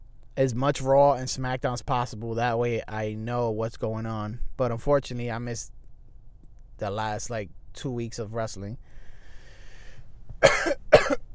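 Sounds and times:
speech: 0.4 - 5.8, 6.8 - 8.9
sharp coughs: 10.4 - 11.3.

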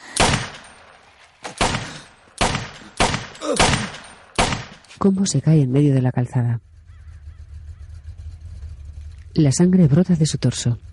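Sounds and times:
pistol shots fired by a boy riding a bicycle in a street: 0.2 - 0.8, 1.5 - 4.8
speech: 3.4 - 3.8, 5.0 - 6.7, 9.4 - 10.9.

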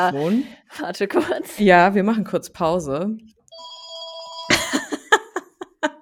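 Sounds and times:
speech: 0.0 - 3.4
old landline house telephone ringing with an electronic trill: 3.5 - 4.8
person laughing: 4.5 - 6.0.

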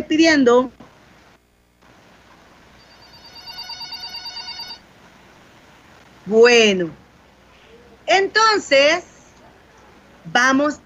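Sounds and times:
speech: 0.1 - 0.8, 6.3 - 7.0, 8.1 - 9.1, 10.3 - 10.8
telephone ringing with an incoming call: 2.7 - 4.9.

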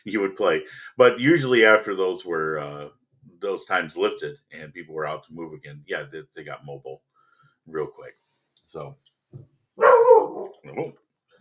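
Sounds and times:
speech: 0.0 - 7.1, 7.7 - 11.0
dog barking: 9.8 - 10.7.

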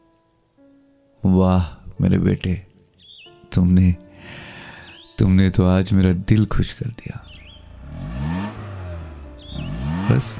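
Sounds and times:
speech: 1.2 - 2.7, 3.5 - 4.5, 5.2 - 7.3, 10.1 - 10.3
car engine revving as the car pulls away: 7.3 - 10.3.

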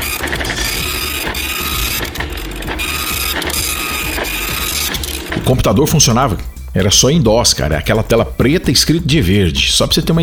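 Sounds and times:
dot matrix printer printing: 0.0 - 6.7
speech: 5.5 - 10.2.

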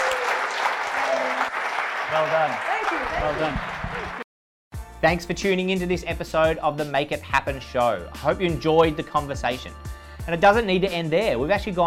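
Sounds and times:
audience applause: 0.0 - 4.2
cheering voices in an audience: 0.0 - 4.2
speech: 2.1 - 4.2, 5.0 - 11.8.

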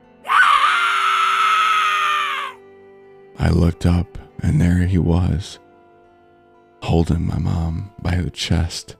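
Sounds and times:
woman screaming in terror: 0.2 - 2.6
speech: 3.5 - 5.6, 6.9 - 8.9.

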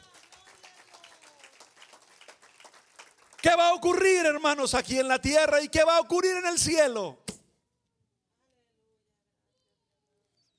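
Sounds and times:
audience applause in a large room: 0.0 - 4.0
speech: 3.4 - 7.2.

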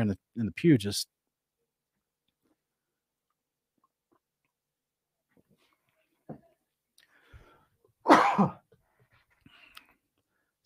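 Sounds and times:
speech: 0.0 - 1.2, 8.0 - 8.6
breaths: 7.0 - 7.9, 8.7 - 10.6
loud harsh cough: 8.0 - 8.7
throat clearing: 8.1 - 8.6.

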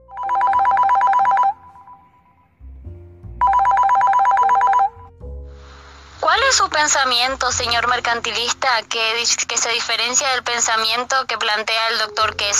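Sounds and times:
telephone bell ringing with an incoming call: 0.1 - 2.0, 3.4 - 5.0
speech: 6.5 - 12.5.

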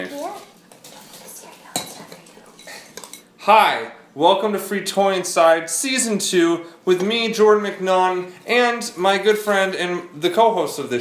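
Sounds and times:
metal spoon and knife clinking: 1.8 - 3.3
speech: 3.4 - 10.9.

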